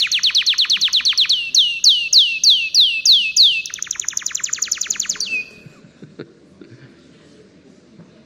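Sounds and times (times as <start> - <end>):
Atlantic Canary singing rapid trills: 0.0 - 5.7
laughter: 5.5 - 7.1.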